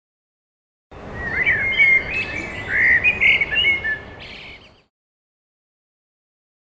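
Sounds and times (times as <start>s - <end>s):
bird chirping and singing: 1.0s - 4.9s.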